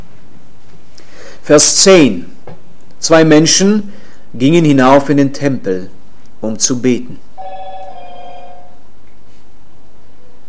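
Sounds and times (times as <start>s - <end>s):
speech: 1.5s - 2.3s, 3.0s - 7.2s
telephone ringing: 7.4s - 8.8s.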